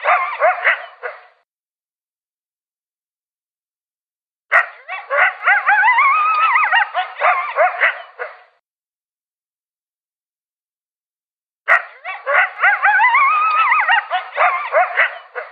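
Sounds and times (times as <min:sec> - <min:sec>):
coyote yipping and howling: 0:00.0 - 0:01.3, 0:04.5 - 0:08.4, 0:11.7 - 0:15.5.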